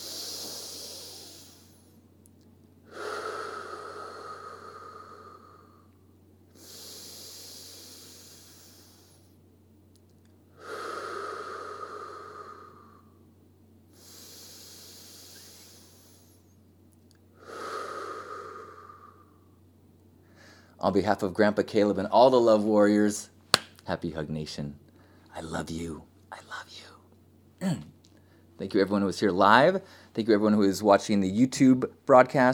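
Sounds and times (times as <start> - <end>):
slow breathing in through the nose during a guided meditation: 0.0 - 2.0, 2.8 - 9.4, 10.5 - 13.2, 13.9 - 16.6, 17.4 - 19.5, 20.2 - 20.8
steady low hum: 0.0 - 32.5
speech: 20.8 - 23.3, 23.9 - 24.8, 25.4 - 26.1, 28.6 - 32.5.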